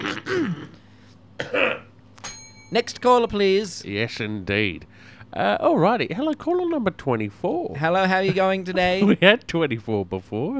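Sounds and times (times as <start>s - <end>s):
harsh cough: 0.0s - 0.8s, 1.4s - 1.9s
person clearing throat with a gravelly rasp: 0.0s - 0.8s, 1.4s - 1.9s
speech: 2.7s - 10.5s
laughter: 7.8s - 9.7s.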